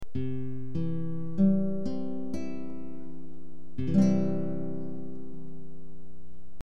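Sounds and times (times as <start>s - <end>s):
C chord on guitar: 0.2s - 6.0s.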